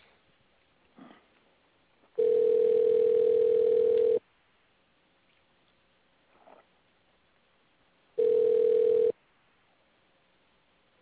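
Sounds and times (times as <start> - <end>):
telephone line tone: 2.2 - 4.2, 8.2 - 9.2.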